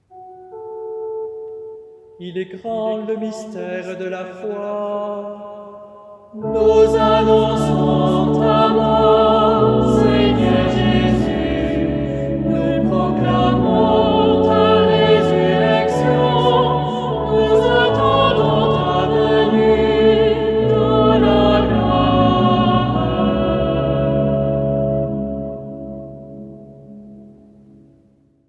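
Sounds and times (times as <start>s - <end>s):
liturgical song at a wedding: 0.0s - 27.7s.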